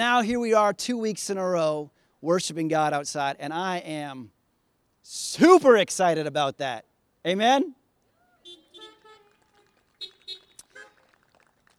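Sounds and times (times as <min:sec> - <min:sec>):
speech: 0:00.0 - 0:04.4, 0:05.0 - 0:07.8
car horns honking at an outdoor worship service: 0:08.4 - 0:11.1.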